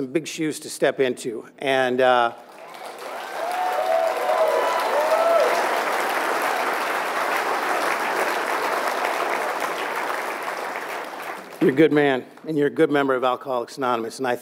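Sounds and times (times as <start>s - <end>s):
speech: 0.0s - 2.6s, 11.6s - 14.4s
audience applause: 2.4s - 11.9s.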